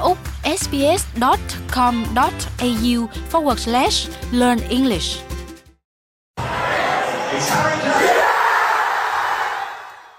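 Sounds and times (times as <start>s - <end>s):
speech: 0.0s - 5.3s
England football fans cheering and yelling after penalty equaliser: 6.4s - 10.1s.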